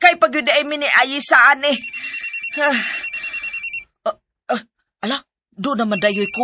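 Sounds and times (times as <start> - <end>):
speech: 0.2 - 3.1, 4.0 - 6.4
mobile phone ringing with an electronic trill: 1.7 - 3.9, 5.8 - 6.4.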